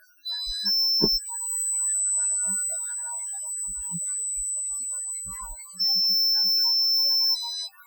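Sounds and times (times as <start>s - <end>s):
filtered noise: 0.3s - 7.7s.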